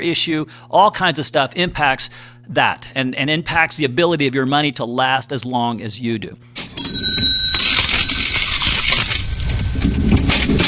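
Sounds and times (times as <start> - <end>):
speech: 0.0 - 6.6
cash register ringing with a bright bell tone: 6.6 - 9.0
clattering mechanical rattling: 6.7 - 10.6.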